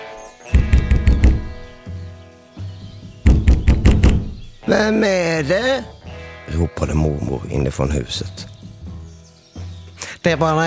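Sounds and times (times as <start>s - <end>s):
heavy knocking on a wooden door: 0.5s - 1.8s, 3.0s - 4.6s
speech: 4.7s - 8.5s, 10.2s - 10.6s.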